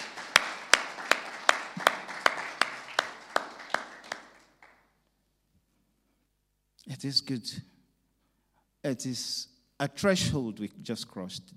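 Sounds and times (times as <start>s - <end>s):
crowd clapping together in a steady even rhythm: 0.0s - 5.0s
speech: 6.9s - 7.7s, 8.8s - 11.5s.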